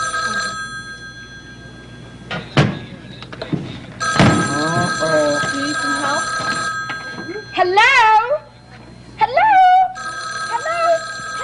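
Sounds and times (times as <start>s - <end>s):
telephone bell ringing in a bright tinny trill: 0.0s - 2.2s, 4.0s - 8.2s, 9.9s - 11.4s.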